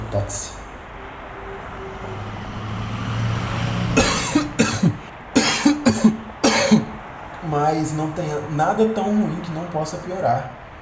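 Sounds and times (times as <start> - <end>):
truck engine rumbling in traffic: 0.0 - 10.8
speech: 0.1 - 0.6, 7.6 - 10.6
person coughing harshly: 4.0 - 7.0.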